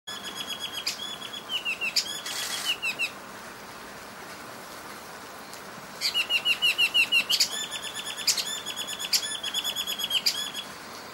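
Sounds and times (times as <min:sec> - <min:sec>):
Chinese babax Babax lanceolatus calling with whistled notes: 0:00.1 - 0:03.1, 0:06.0 - 0:10.6.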